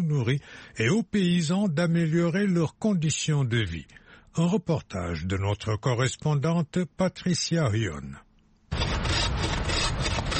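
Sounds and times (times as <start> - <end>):
speech: 0.1 - 8.2
hand saw cutting black wattle acacia wood in South Africa: 8.7 - 10.3.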